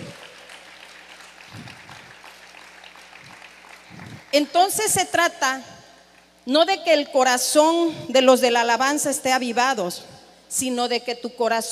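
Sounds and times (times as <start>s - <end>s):
audience applauding: 0.0s - 4.5s
low sustained hum: 0.0s - 10.8s
speech: 4.4s - 5.7s, 6.4s - 11.6s.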